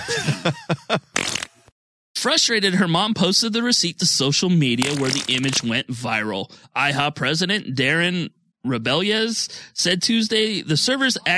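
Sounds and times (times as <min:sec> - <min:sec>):
laughter: 0:00.0 - 0:01.2
speech: 0:00.4 - 0:00.8, 0:02.2 - 0:11.3
comic fart sound effects: 0:01.1 - 0:01.7.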